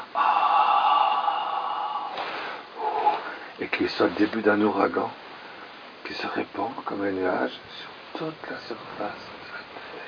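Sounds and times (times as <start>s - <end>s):
forceful exhalation blown out during a religious talk: 0.0s - 3.5s
speech: 3.8s - 5.2s, 6.1s - 9.3s.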